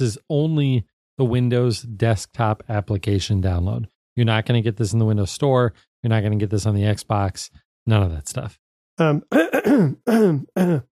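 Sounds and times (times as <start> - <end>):
speech: 0.0 - 10.9
person clearing something stuck in the throat: 9.0 - 10.9.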